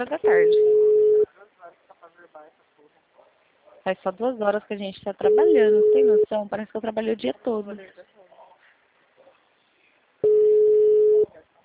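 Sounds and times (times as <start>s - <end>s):
speech: 0.0s - 0.8s, 3.8s - 8.1s
telephone ringback tone on an unanswered call: 0.3s - 1.3s, 5.3s - 6.3s, 10.2s - 11.3s.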